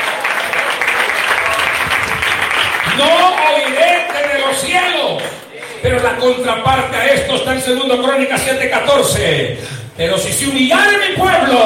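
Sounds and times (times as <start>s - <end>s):
audience applauding during an afternoon sermon: 0.0s - 6.2s
speech: 3.0s - 3.8s, 4.5s - 11.6s.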